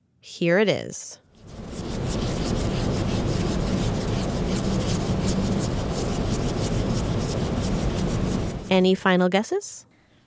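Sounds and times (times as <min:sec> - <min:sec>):
speech: 0:00.2 - 0:01.6, 0:08.7 - 0:09.9
cotton swab scrubbing a painting's surface to clean it: 0:01.4 - 0:08.8.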